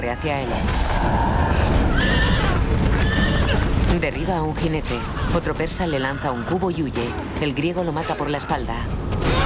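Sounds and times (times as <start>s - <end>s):
speech: 0.0s - 2.2s, 3.9s - 9.3s
horse neighing and rearing in battle: 1.6s - 3.8s.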